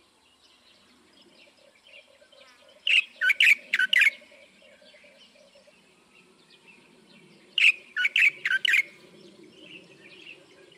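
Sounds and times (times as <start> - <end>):
light-vented bulbul calling: 1.4 - 5.8, 7.6 - 9.1.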